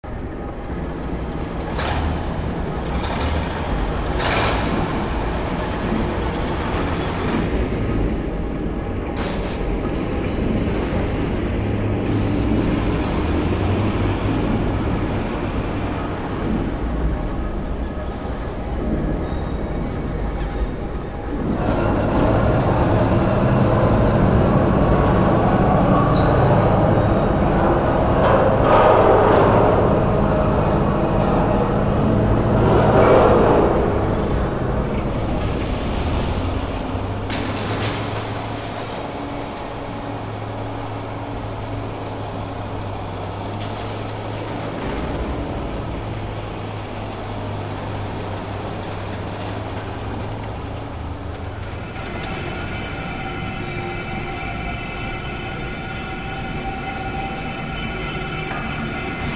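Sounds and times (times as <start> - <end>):
warehouse exterior ambience: 0.0 - 59.3.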